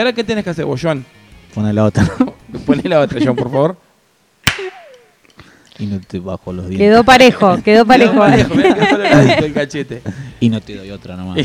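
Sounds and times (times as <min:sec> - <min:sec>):
speech: 0:00.0 - 0:03.8, 0:05.8 - 0:11.4
laughter: 0:02.0 - 0:03.7, 0:08.0 - 0:10.1
person slapping another on the cheek: 0:04.4 - 0:05.0.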